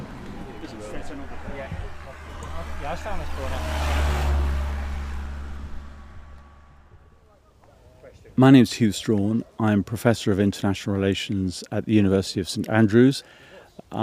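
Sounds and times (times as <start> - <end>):
vehicle passing on a main road: 0.0 - 7.6
road traffic rumbling on a main road: 0.0 - 8.0
speech: 0.8 - 4.6, 8.4 - 14.0.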